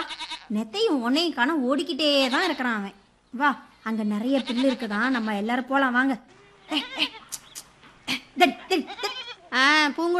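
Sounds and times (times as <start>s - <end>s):
goats bleating: 0.0s - 0.6s, 2.1s - 2.8s, 4.2s - 5.5s, 6.6s - 7.4s, 8.7s - 9.6s
speech: 0.5s - 7.2s, 8.4s - 10.1s.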